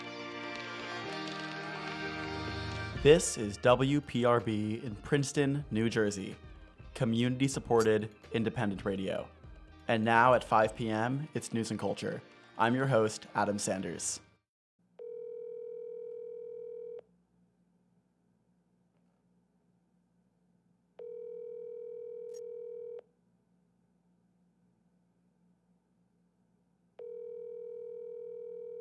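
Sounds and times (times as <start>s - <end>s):
speech: 3.0s - 6.4s, 7.0s - 14.3s
phone line ringback tone: 15.0s - 17.1s, 21.0s - 23.1s, 27.0s - 28.7s.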